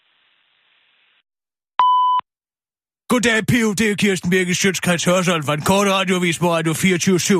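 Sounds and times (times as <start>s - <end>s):
voicemail answering machine beep: 1.8s - 2.2s
speech: 3.1s - 7.3s.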